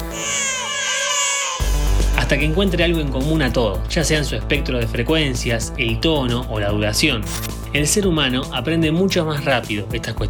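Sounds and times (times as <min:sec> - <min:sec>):
baby crying: 0:00.0 - 0:02.3
speech: 0:02.3 - 0:10.2.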